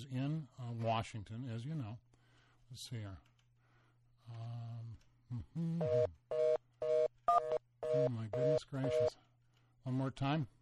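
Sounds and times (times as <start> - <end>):
speech: 0.0 - 2.1, 2.7 - 3.3, 4.3 - 6.6, 7.9 - 10.5
electronic telephone dialing tones: 5.8 - 9.1
short telephone beeps: 5.8 - 9.1.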